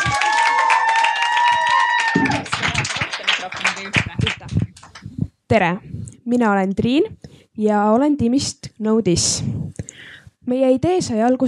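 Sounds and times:
high whoops and whistles: 0.0s - 2.4s
audience cheering: 0.0s - 4.5s
audience clapping: 0.0s - 5.1s
speech: 5.5s - 9.6s, 10.5s - 11.4s.

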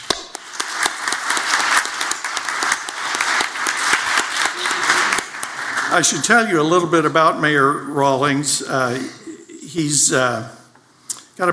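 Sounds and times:
crowd at a debate applauding: 0.0s - 6.9s
speech: 6.0s - 10.6s.

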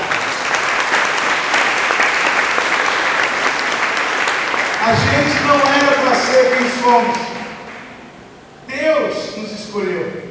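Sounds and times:
large congregation applauding: 0.0s - 7.9s
speech: 6.4s - 7.4s.

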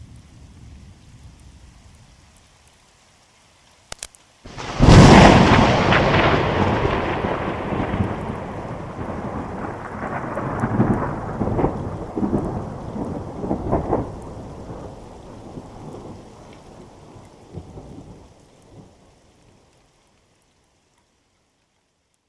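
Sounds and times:
steady rain: 0.0s - 22.2s
thunderclap rolling into a long rumble: 4.5s - 18.9s.

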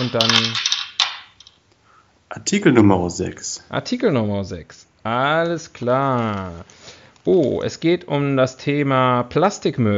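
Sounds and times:
speech: 0.0s - 0.7s, 2.3s - 9.9s
dice rattling and tumbling across a hard surface: 0.0s - 1.6s.

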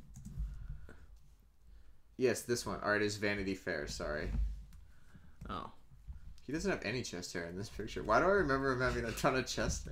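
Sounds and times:
computer keyboard typing: 0.0s - 0.5s
speech: 2.2s - 4.5s, 5.5s - 5.8s, 6.5s - 9.9s.

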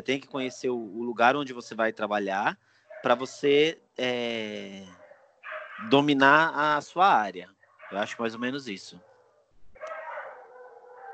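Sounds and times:
speech: 0.0s - 5.0s, 5.8s - 9.1s
dogs howling in a wavering chorus: 5.0s - 6.0s, 7.8s - 8.2s, 9.8s - 11.1s.

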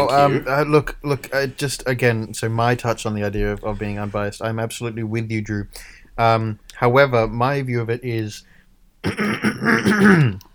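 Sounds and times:
speech: 0.0s - 10.5s
person clearing throat: 9.0s - 10.5s.

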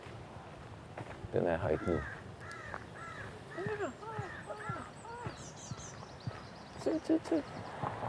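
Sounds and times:
faint outdoor background: 0.0s - 8.0s
speech: 1.3s - 2.2s, 6.9s - 7.7s
great tit calling with harsh scratchy notes and chirps: 1.6s - 8.0s.

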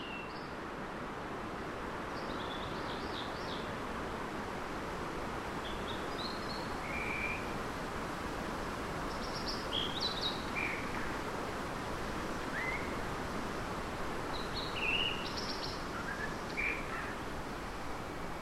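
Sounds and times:
distant river draining the rainforest rushing, echoing across the valley: 0.1s - 18.3s.

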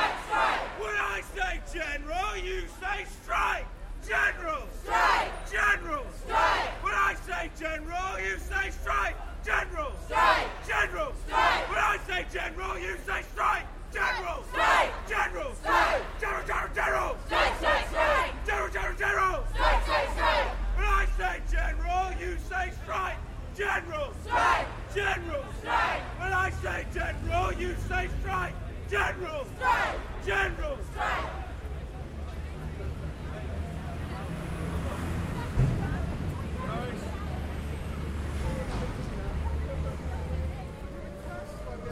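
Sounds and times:
crowd of students at a demonstration against cuts shouting: 0.0s - 41.9s
low rumble of traffic or movement: 0.0s - 41.9s.

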